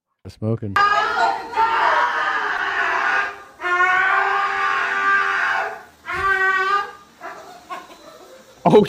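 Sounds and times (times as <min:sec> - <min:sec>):
husky howling and yowling while being groomed: 0:00.8 - 0:07.8.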